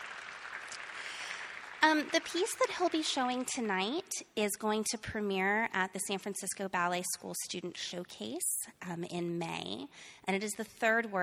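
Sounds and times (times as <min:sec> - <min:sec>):
crowd clapping: 0:00.0 - 0:03.6
speech: 0:01.8 - 0:11.2.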